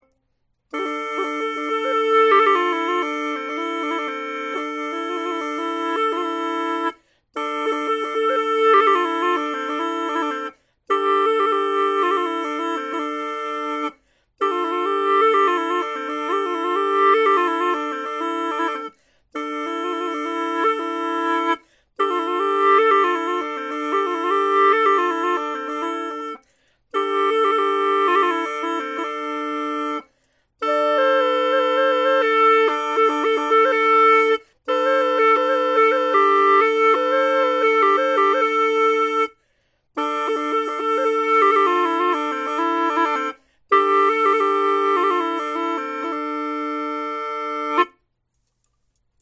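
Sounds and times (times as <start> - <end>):
hulusi gourd flute playing simple low notes: 0.7 - 39.4, 40.0 - 48.0.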